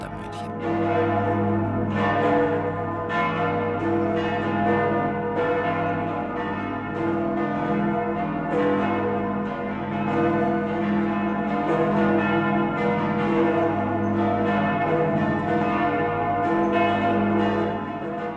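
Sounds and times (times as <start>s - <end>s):
several church bells pealing together: 0.0s - 18.3s.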